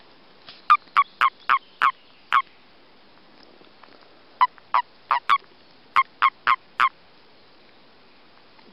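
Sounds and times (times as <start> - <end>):
Common toad mating calls during breeding: 0.7 - 2.4, 4.4 - 5.4, 6.0 - 6.9.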